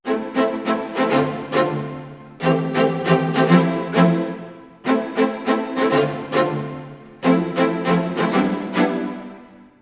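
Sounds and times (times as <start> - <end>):
orchestral strings in A minor: 0.0 - 9.8.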